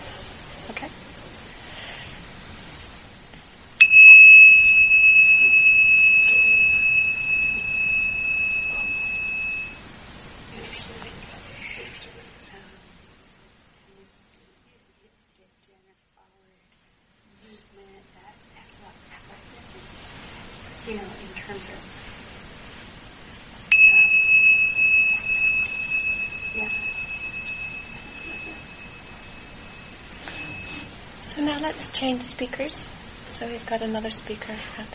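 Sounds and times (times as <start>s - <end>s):
speech: 0.7s - 1.1s, 31.6s - 34.9s
bright metallic bell struck to signal a speaking exercise: 3.8s - 9.8s, 23.7s - 30.9s.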